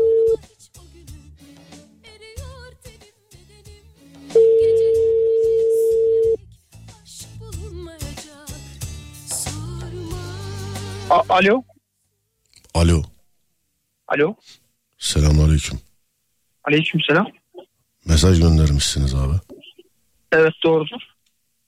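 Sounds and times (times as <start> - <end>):
ringback tone on an outgoing phone call: 0.0 - 0.4, 4.4 - 6.4
speech: 11.3 - 11.7, 12.8 - 13.1, 14.1 - 15.9, 16.7 - 17.4, 18.0 - 19.6, 20.3 - 21.1.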